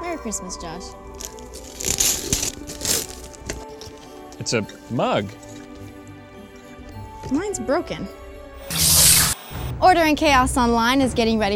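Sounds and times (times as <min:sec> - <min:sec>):
speech: 0:00.2 - 0:02.0, 0:04.4 - 0:05.4, 0:07.3 - 0:08.9, 0:09.8 - 0:11.5
Christmas gift wrapping paper being torn open: 0:01.1 - 0:03.8, 0:08.7 - 0:09.4
paper rustling from handling: 0:01.2 - 0:04.1.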